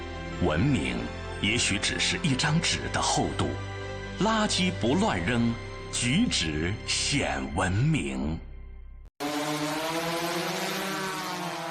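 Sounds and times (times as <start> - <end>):
speech: 0.4 - 8.5
drone propellers buzzing overhead: 9.2 - 11.7.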